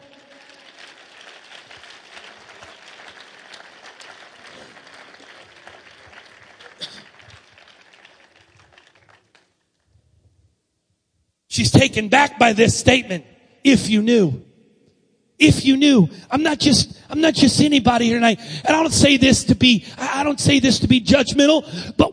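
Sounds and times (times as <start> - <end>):
large audience clapping hands: 0.0 - 9.9
speech: 11.6 - 14.5, 15.4 - 22.1.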